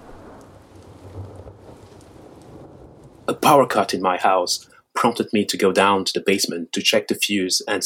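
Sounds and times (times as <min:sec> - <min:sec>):
heavy rain during a thunderstorm: 0:00.0 - 0:03.7
deep low rumble of thunder: 0:00.0 - 0:03.8
speech: 0:03.5 - 0:07.8.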